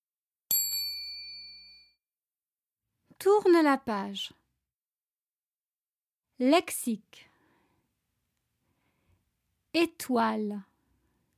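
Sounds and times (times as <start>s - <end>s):
small bell ringing to signal a page turn: 0.5s - 2.0s
speech: 3.2s - 4.4s, 6.4s - 7.3s, 9.8s - 10.7s.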